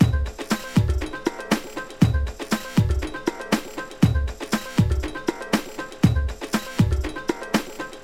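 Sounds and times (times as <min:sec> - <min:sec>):
soul music: 0:00.0 - 0:08.0.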